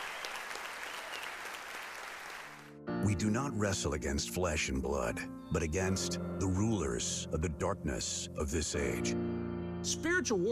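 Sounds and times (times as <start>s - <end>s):
congregation clapping in praise during a church service: 0.0s - 2.8s
speech: 3.0s - 10.4s.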